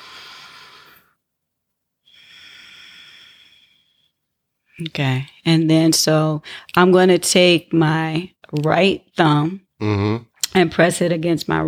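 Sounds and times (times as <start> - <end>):
deep breathing during a guided breathing exercise: 0.0 - 1.2, 2.0 - 4.2
speech: 4.8 - 11.6.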